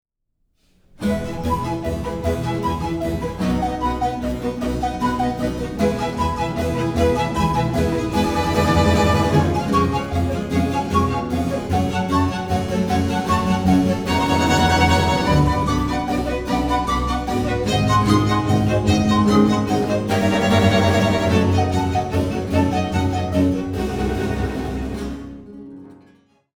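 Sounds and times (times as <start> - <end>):
baroque music: 1.0 - 26.5.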